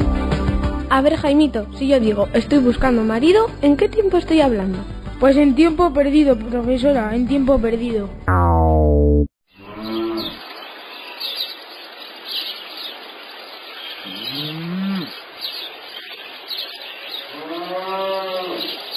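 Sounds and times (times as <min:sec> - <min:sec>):
speech: 0:00.9 - 0:09.3
birds chirping faintly: 0:09.5 - 0:18.9
cow mooing outdoors: 0:14.1 - 0:15.1, 0:17.3 - 0:18.8.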